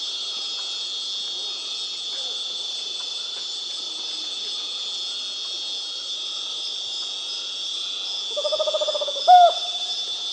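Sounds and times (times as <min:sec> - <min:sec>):
continuous high insect hum in South America: 0:00.0 - 0:10.3
tropical screech-owl giving a trill of hooting pulses in South America: 0:08.3 - 0:09.9.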